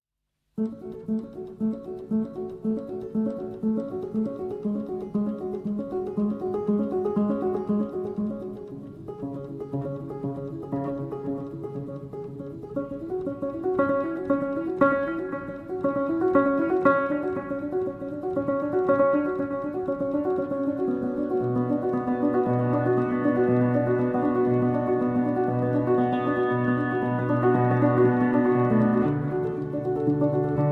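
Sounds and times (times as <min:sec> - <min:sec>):
solo piano: 0:00.6 - 0:30.7.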